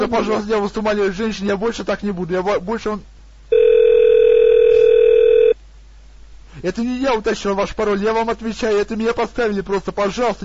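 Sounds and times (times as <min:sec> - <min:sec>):
speech: 0:00.0 - 0:03.1, 0:06.6 - 0:10.4
telephone dial tone during a call: 0:03.5 - 0:05.6.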